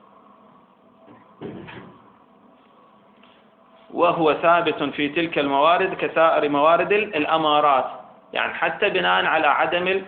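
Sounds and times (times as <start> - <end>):
door being shut: 1.1 - 2.0
speech: 3.9 - 10.0.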